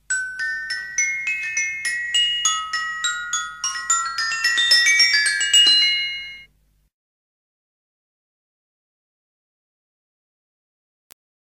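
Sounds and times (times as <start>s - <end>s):
glockenspiel: 0.0s - 6.5s.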